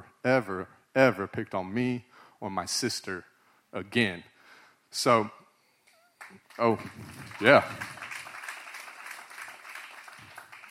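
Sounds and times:
speech: 0.2s - 4.3s, 4.9s - 5.4s, 6.3s - 8.0s
crowd applauding: 6.2s - 10.6s.

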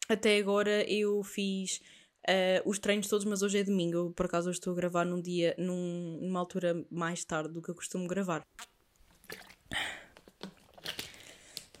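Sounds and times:
speech: 0.1s - 8.7s
person drinking water with sips, gulps and swallowing: 8.6s - 11.7s.

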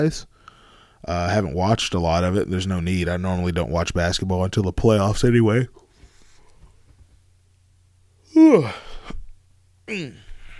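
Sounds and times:
speech: 0.0s - 0.3s, 1.0s - 5.8s, 8.4s - 8.8s, 9.9s - 10.2s
person yawning with a voiced falling groan: 8.3s - 9.2s, 9.9s - 10.5s.

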